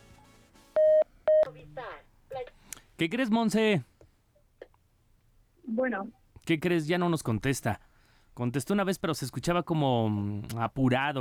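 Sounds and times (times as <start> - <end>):
short loud electronic telephone keypad tones of a number being dialed: 0.8 - 1.5
speech: 3.0 - 3.9, 5.8 - 11.2.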